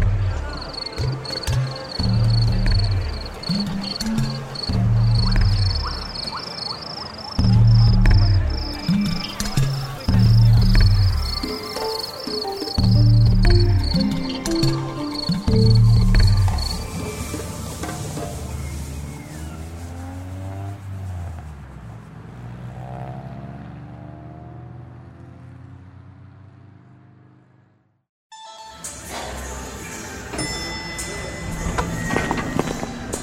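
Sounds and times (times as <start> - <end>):
voices: 0.0 - 20.8, 29.3 - 33.2
fighting crickets chirping on a street corner: 0.4 - 19.0.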